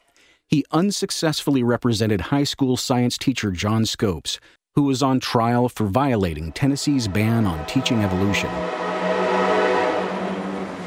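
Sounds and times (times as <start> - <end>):
speech: 0.5 - 8.9
train passing a historic courthouse: 6.4 - 10.8.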